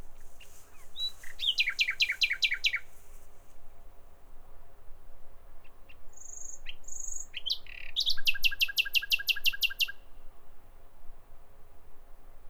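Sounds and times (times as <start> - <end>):
common nightingale song with repeated sharp notes and high whistles: 0.0 - 3.2, 6.2 - 10.0.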